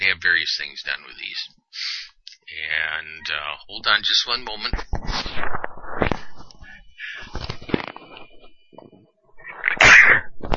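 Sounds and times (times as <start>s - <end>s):
speech: 0.2s - 6.1s
soft breathy rustling: 6.0s - 7.6s
sharp loud sneeze: 9.6s - 10.3s.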